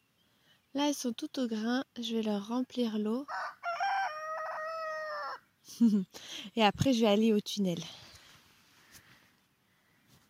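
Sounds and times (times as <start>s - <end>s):
speech: 0.7s - 3.6s, 5.8s - 8.0s
rooster crowing: 3.3s - 5.4s.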